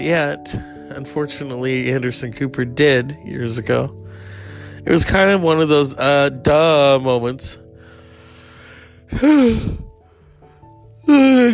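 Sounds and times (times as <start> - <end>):
speech: 0.0 - 4.0, 4.8 - 7.6, 9.1 - 9.9, 11.1 - 11.5
person yawning: 9.1 - 10.0, 11.0 - 11.5.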